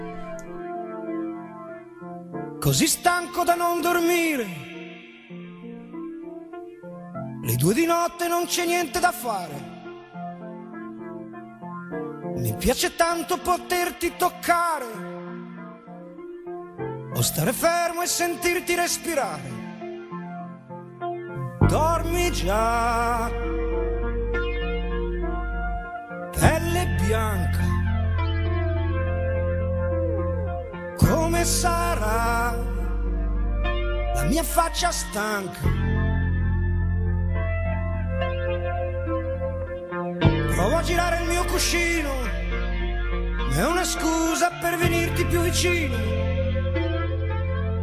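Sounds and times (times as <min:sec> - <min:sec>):
keyboard-led accompaniment: 0:00.0 - 0:47.8
speech: 0:02.6 - 0:04.7, 0:07.5 - 0:09.7, 0:12.4 - 0:15.1, 0:17.2 - 0:19.6, 0:21.7 - 0:23.6, 0:31.1 - 0:32.8, 0:34.2 - 0:35.9, 0:40.7 - 0:42.4, 0:43.6 - 0:46.4
man singing an Italian pop song: 0:02.6 - 0:05.6, 0:07.4 - 0:10.1, 0:12.4 - 0:15.6, 0:17.1 - 0:20.1, 0:21.4 - 0:23.8, 0:26.3 - 0:28.0, 0:31.0 - 0:33.1, 0:34.2 - 0:36.1, 0:40.3 - 0:42.7, 0:43.4 - 0:47.3.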